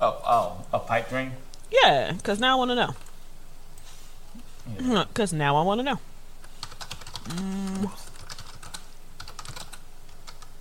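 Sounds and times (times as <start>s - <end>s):
speech: 1.0s - 3.0s, 4.7s - 6.1s, 7.3s - 8.0s
fingers typing on a computer keyboard: 6.6s - 10.5s.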